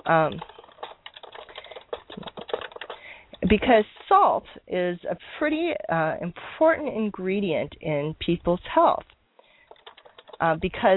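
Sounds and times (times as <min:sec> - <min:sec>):
typing on a computer keyboard to enter a question in a chat room: 0:00.0 - 0:03.4, 0:09.4 - 0:10.9
speech: 0:00.1 - 0:00.5, 0:03.5 - 0:09.1, 0:10.4 - 0:10.9.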